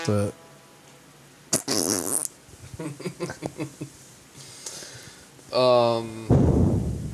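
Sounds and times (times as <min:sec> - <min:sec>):
speech: 0:00.0 - 0:00.4, 0:02.8 - 0:04.0, 0:05.5 - 0:06.6
farts against a metal chair seat: 0:01.5 - 0:02.3.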